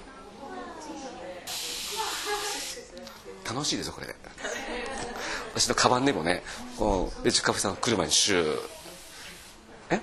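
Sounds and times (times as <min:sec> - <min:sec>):
pressurized sprayer hissing: 0:01.5 - 0:02.8
speech: 0:03.5 - 0:04.5, 0:05.1 - 0:08.8.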